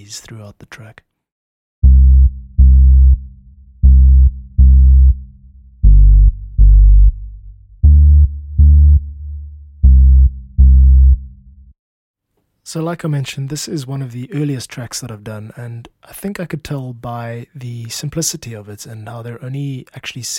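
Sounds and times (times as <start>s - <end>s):
speech: 0.0s - 1.1s, 12.7s - 20.3s
warm rounded sine-wave bass tone: 1.8s - 11.5s.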